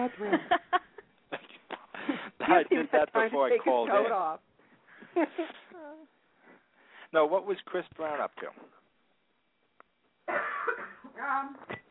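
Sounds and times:
speech: 0:00.0 - 0:00.7, 0:02.5 - 0:04.5, 0:05.2 - 0:05.6, 0:07.1 - 0:08.8, 0:11.2 - 0:11.8
laughter: 0:00.0 - 0:01.5
loud harsh cough: 0:10.3 - 0:11.1.

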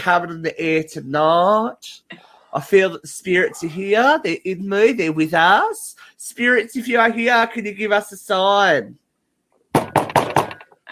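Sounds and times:
speech: 0:00.0 - 0:09.0
knocking: 0:09.7 - 0:10.8.

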